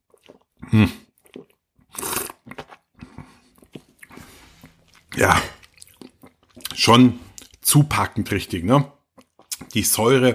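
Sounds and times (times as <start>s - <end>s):
wet mouth sounds and swishes while tasting red wine: 0.0s - 7.7s, 9.1s - 9.8s
person slurping Südtirol red wine from old vines: 0.2s - 7.5s
speech: 0.7s - 1.0s, 5.2s - 5.6s, 6.8s - 9.0s, 9.8s - 10.3s.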